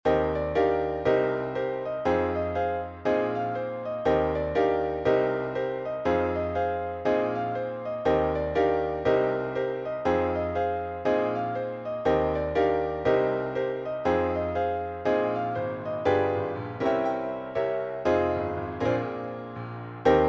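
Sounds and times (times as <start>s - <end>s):
piano note Eb: 0.1s - 20.2s.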